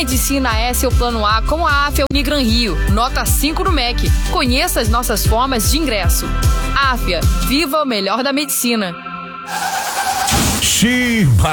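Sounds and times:
speech: 0.0 - 9.7, 10.7 - 11.5
car tires squealing in a skid: 9.4 - 11.0
car crash with scattered debris: 9.5 - 11.5.

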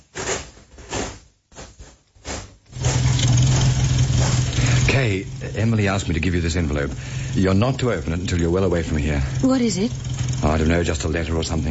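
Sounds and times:
car engine cranking, starting and idling: 2.8 - 11.6
speech: 5.0 - 11.6.

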